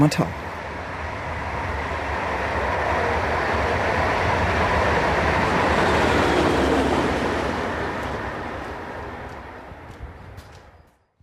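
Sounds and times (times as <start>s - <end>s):
speech: 0.0s - 0.4s
train rumbling past at former border railway station in Oebisfelde Germany: 0.0s - 11.2s.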